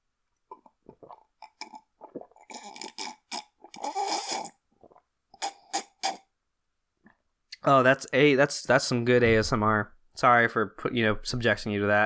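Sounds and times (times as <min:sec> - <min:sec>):
slurping sips of hot coffee: 0:00.5 - 0:06.3
speech: 0:07.7 - 0:12.0.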